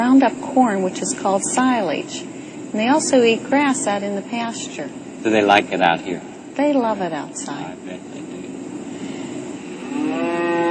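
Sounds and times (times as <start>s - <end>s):
speech: 0.0s - 8.2s
Guernsey or Holstein dairy cow mooing: 9.8s - 10.6s.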